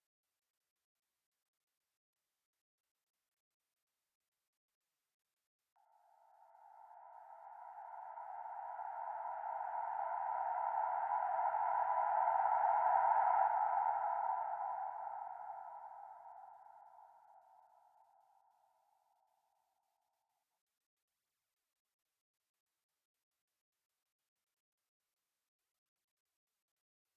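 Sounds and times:
reversed effect sound in G minor: 6.0 - 17.0.

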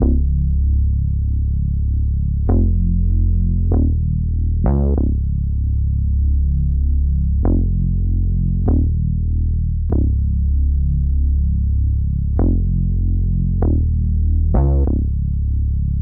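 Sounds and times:
FM synth bass: 0.0 - 16.0.

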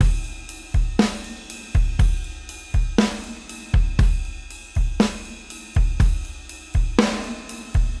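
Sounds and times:
drum beat: 0.0 - 7.9.

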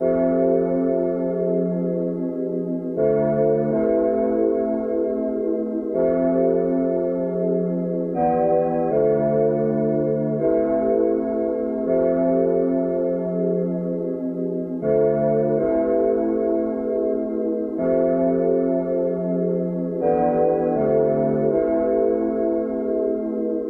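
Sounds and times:
analog vintage tapedown synth pad chord in C: 0.0 - 23.6.

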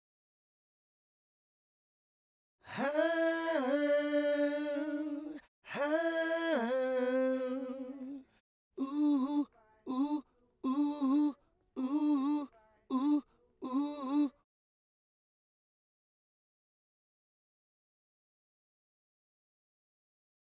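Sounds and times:
male vocal harmony in G major and D major: 2.7 - 14.4.

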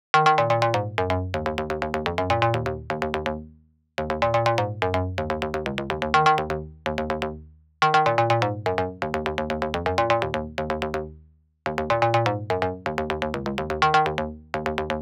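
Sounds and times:
dry high bass in D minor: 0.2 - 15.0.

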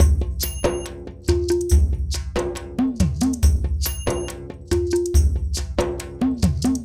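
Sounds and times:
mixed percussion: 0.0 - 6.8.

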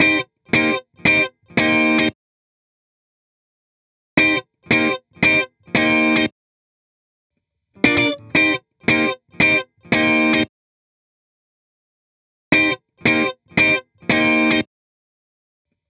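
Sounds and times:
guitar strumming with no effects: 0.0 - 2.1, 4.2 - 6.3, 7.8 - 10.4, 12.6 - 14.6.

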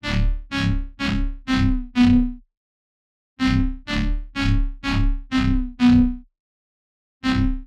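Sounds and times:
bass loop in D: 0.0 - 2.4, 3.4 - 6.2, 7.2 - 7.6.

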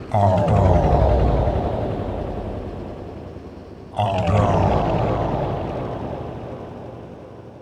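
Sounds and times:
hypnotic techno vocal loop: 0.0 - 3.0, 4.0 - 5.9.

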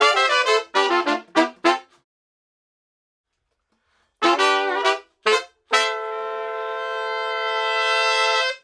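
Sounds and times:
horns playing in D minor: 0.0 - 2.0, 4.2 - 8.6.

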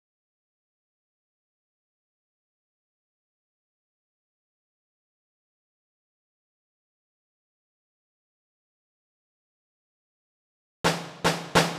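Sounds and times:
106 bpm drum fill: 10.9 - 11.7.

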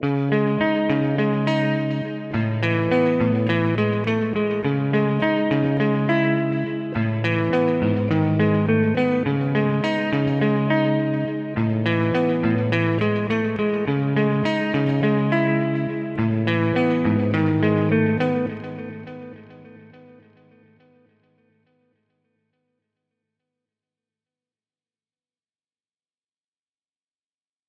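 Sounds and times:
wet guitar loop in C minor: 0.0 - 20.8.

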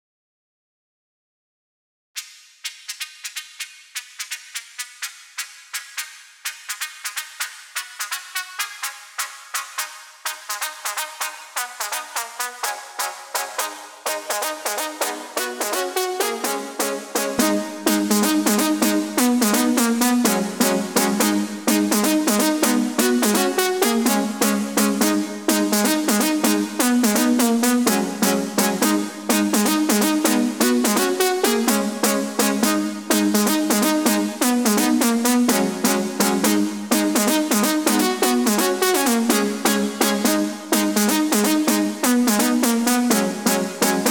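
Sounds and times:
wet synth lead drop in G: 10.5 - 44.0.

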